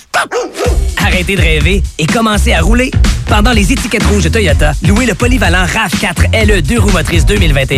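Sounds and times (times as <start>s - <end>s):
dog barking and yipping: 0.2s - 0.8s
speech: 1.2s - 7.7s.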